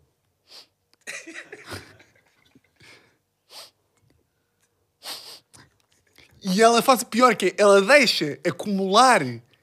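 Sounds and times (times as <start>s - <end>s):
person imitating sniffling: 0.4s - 0.8s, 3.5s - 3.8s, 5.0s - 5.7s
speech: 6.4s - 9.5s.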